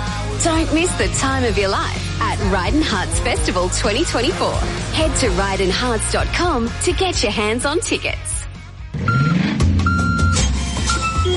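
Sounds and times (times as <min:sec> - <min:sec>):
speech: 0:00.4 - 0:08.4
delivery truck reversing beeps: 0:09.0 - 0:11.3.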